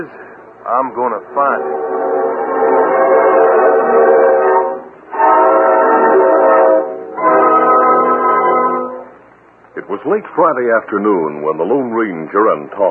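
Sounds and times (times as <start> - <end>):
speech: 0.0 - 2.0, 9.9 - 12.8
distant steam train whistle blasts: 1.4 - 9.1.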